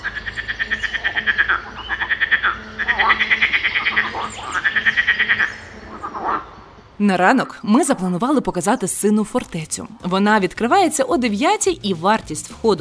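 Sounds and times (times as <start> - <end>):
frogs croaking in a chorus near a river at night: 0.0 - 11.1
speech: 7.0 - 12.7.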